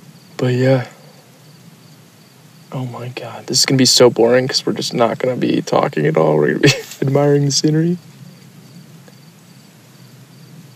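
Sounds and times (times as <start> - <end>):
crickets chirping outdoors at night: 0.0 - 10.7
soft low rumble of open night air: 0.0 - 10.7
speech: 0.4 - 1.0, 2.7 - 8.2
laughter: 6.5 - 7.5.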